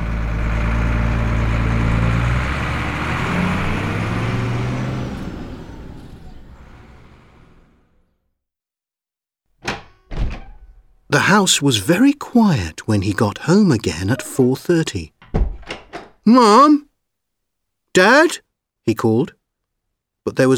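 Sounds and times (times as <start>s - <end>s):
bus engine idling and pulling away: 0.0s - 8.2s
speech: 11.1s - 15.2s, 16.2s - 16.9s, 18.0s - 19.4s, 20.2s - 20.5s.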